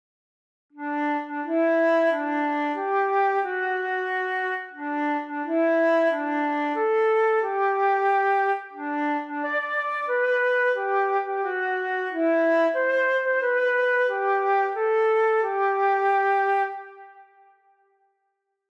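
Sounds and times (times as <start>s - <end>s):
transverse flute solo: 0.8s - 17.8s.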